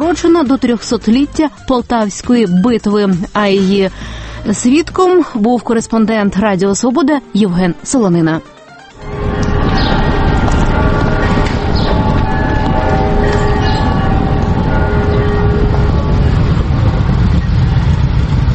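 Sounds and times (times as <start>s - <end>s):
speech: 0.1s - 9.2s
steady droning tones: 8.9s - 18.5s
column of motorcycles roaring past: 9.0s - 18.5s.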